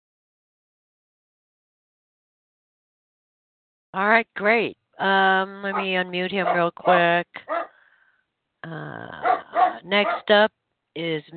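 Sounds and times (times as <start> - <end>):
speech: 3.9 - 7.6, 8.6 - 11.3
dog barking: 5.7 - 7.7, 9.2 - 10.3.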